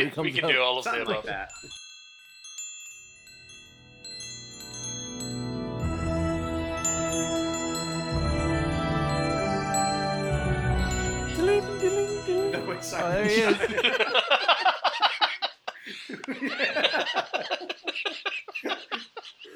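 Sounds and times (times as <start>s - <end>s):
speech: 0.0s - 1.8s, 11.9s - 15.2s, 15.9s - 19.0s
wind chimes tinkling: 0.9s - 14.7s
laughter: 12.6s - 19.5s.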